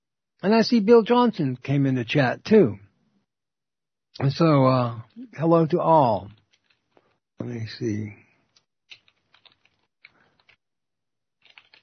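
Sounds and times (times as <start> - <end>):
speech: 0.4 - 2.8, 4.2 - 6.4, 7.4 - 8.2
typing on a computer keyboard: 8.9 - 10.6, 11.4 - 11.8.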